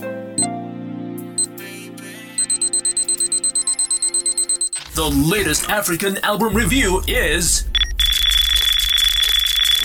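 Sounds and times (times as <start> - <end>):
clock alarm beeps marking the start of a timed segment: 2.4 - 4.9, 7.6 - 9.8
speech: 5.0 - 7.7
sustained low hum: 6.5 - 9.8.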